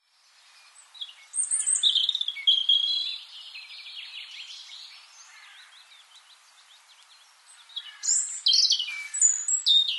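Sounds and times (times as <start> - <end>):
Erithacus rubecula European robin warbling: 1.0 - 4.9, 7.5 - 9.9.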